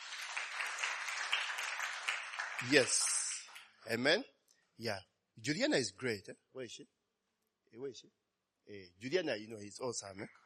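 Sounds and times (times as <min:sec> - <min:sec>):
audience applause for a worship team: 0:00.0 - 0:03.6
speech: 0:02.6 - 0:03.1, 0:03.9 - 0:07.0, 0:07.7 - 0:10.4.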